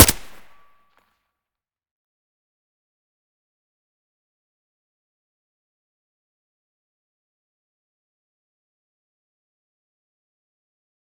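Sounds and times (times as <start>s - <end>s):
AK-74U rifle with silencer firing: 0.0s - 0.6s.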